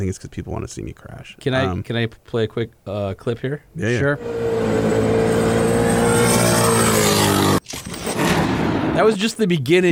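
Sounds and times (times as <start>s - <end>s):
speech: 0.0s - 5.0s, 9.0s - 9.9s
twin turbo jet boat engine roaring at full throttle: 4.2s - 7.6s.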